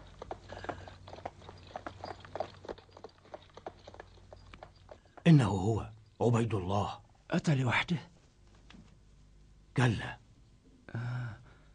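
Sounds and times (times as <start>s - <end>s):
several approaching horses' hooves clattering: 0.0s - 6.4s
speech: 5.3s - 8.1s, 9.8s - 10.2s.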